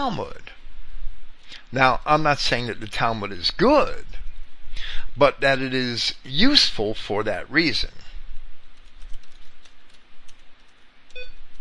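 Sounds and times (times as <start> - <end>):
speech: 0.0 - 0.6, 1.7 - 4.2, 4.8 - 8.0
typing on a computer keyboard: 8.8 - 11.6
electronic beep: 11.1 - 11.4.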